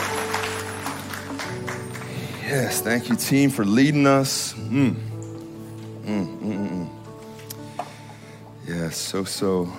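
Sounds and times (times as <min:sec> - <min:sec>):
crowd clapping together: 0:00.0 - 0:03.4
speech: 0:02.5 - 0:05.1, 0:08.9 - 0:09.7.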